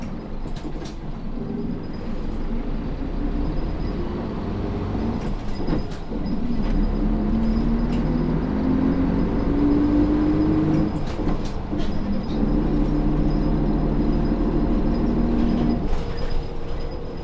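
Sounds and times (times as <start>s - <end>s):
rattles and clicks inside a moving city bus: 0.0s - 2.5s, 5.0s - 8.2s, 10.5s - 13.9s, 14.9s - 17.2s
city bus engine rumble inside the cabin: 0.0s - 17.2s.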